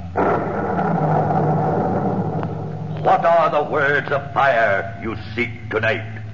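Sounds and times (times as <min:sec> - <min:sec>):
thunder rumbling: 0:00.0 - 0:05.1
speech: 0:03.1 - 0:06.2.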